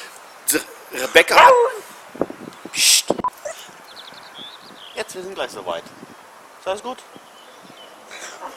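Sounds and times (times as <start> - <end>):
speech: 0.5 - 3.4, 5.0 - 7.2
dog barking: 1.3 - 1.8.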